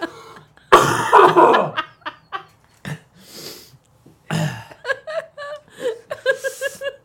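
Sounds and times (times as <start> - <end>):
short bursts of chuckling laughter: 0.0 - 2.6, 4.7 - 7.0
person coughing harshly: 0.7 - 1.8, 4.3 - 4.8.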